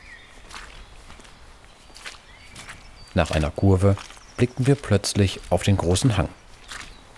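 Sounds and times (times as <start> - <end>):
faint birdsong: 0.0 - 7.1
footsteps on a muddy forest road: 0.0 - 7.1
speech: 3.2 - 6.4.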